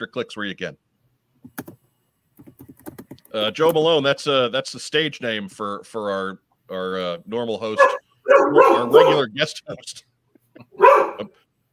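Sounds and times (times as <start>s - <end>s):
speech: 0.0s - 0.8s, 3.3s - 11.4s
dog barking: 7.8s - 9.2s, 10.7s - 11.3s.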